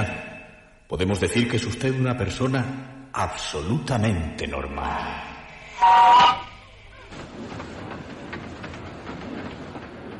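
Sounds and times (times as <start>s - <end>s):
speech: 0.9s - 6.4s
train car rolling on rails: 5.7s - 10.1s
brief loud whistle-like tone: 5.8s - 6.7s.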